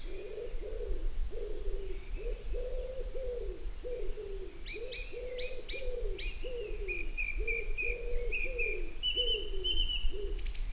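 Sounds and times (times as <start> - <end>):
common wood pigeon cooing: 0.1 - 10.5.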